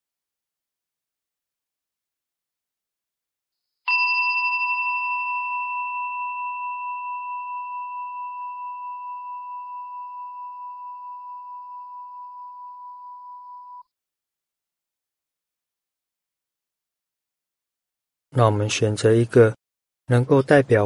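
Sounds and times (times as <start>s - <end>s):
meditation bell ringing: 3.9s - 13.8s
speech: 18.4s - 20.8s.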